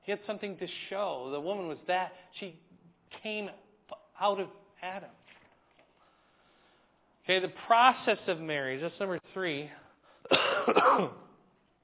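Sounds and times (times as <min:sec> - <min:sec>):
speech: 0:00.1 - 0:05.2, 0:07.3 - 0:11.2
person coughing: 0:10.2 - 0:11.4.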